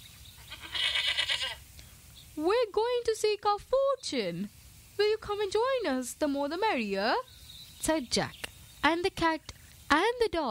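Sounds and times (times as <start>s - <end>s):
billy goat bleating: 0.4s - 1.6s
speech: 2.4s - 10.5s.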